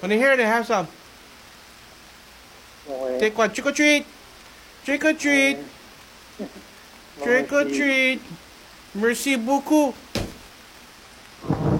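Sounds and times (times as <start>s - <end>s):
speech: 0.0s - 1.0s, 2.9s - 4.2s, 4.8s - 5.8s, 6.4s - 10.0s
dense hissing roar of heavy rain: 0.0s - 11.7s
sharp crack of thunder: 11.4s - 11.7s.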